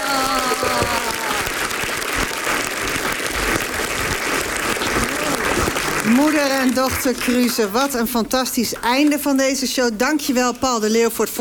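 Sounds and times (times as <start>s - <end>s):
audience applause for the winners at the close of a TV show: 0.0s - 8.0s
speech: 6.1s - 11.3s.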